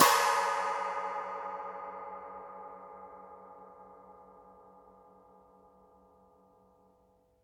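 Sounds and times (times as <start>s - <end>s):
china cymbal played with brushes: 0.0s - 5.2s.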